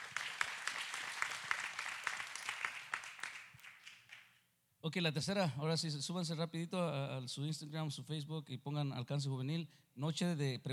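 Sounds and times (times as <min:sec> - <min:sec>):
applause at a youth question-and-answer church night: 0:00.0 - 0:04.4
speech: 0:04.8 - 0:10.7.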